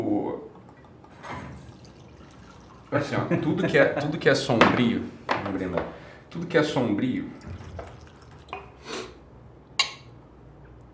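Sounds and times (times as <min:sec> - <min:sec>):
coconut water being poured: 0:00.5 - 0:03.8, 0:06.3 - 0:08.8
speech: 0:02.9 - 0:07.6.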